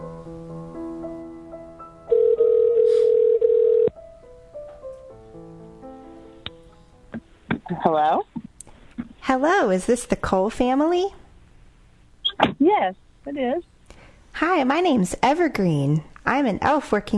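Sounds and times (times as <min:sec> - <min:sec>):
soft music: 0:00.0 - 0:07.5
telephone ring tone during an outgoing call: 0:02.1 - 0:03.9
speech: 0:07.8 - 0:08.3, 0:09.3 - 0:11.2, 0:12.7 - 0:13.7, 0:14.4 - 0:17.1.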